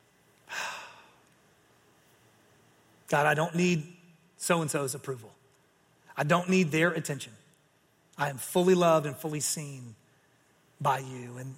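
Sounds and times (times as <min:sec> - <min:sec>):
slow deep breath out during a guided breathing exercise: 0:00.5 - 0:01.2
speech: 0:03.1 - 0:05.4, 0:06.2 - 0:07.4, 0:08.2 - 0:10.0, 0:10.8 - 0:11.5.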